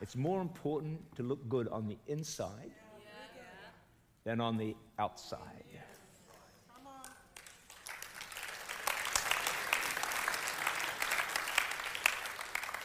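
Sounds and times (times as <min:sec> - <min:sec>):
speech: 0:00.0 - 0:02.8, 0:04.2 - 0:06.0
crowd applauding: 0:06.8 - 0:12.8.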